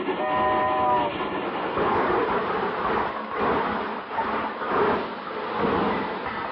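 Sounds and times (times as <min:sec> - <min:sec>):
brief horn-like tone of a train: 0:00.0 - 0:01.2
presidential special train pulling into a station: 0:00.0 - 0:06.5
rolling clatter of rail cars: 0:00.0 - 0:06.5.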